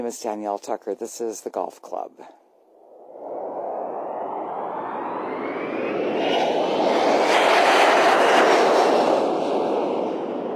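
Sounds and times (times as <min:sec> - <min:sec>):
speech: 0:00.0 - 0:02.4
jet airliner roaring on takeoff: 0:02.7 - 0:10.5.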